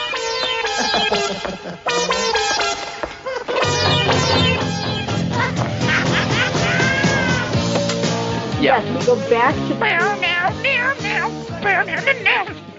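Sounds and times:
full instrumental backing of a horror film theme song: 0.0 - 12.7
laughter: 0.2 - 7.6, 9.6 - 12.7
cat-like meowing vocals in a horror film theme song: 6.6 - 7.6, 9.8 - 12.7.

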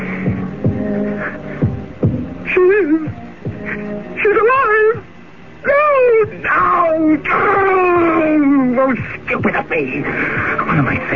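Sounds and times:
heartbeat thumping: 0.0 - 1.0, 1.6 - 3.8, 8.9 - 11.0
dull hum: 0.0 - 11.1.

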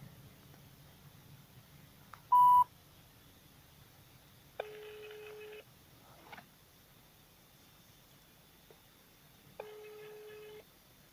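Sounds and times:
faint hiss: 0.0 - 11.1
telephone beep as a number is dialed: 2.3 - 2.6.

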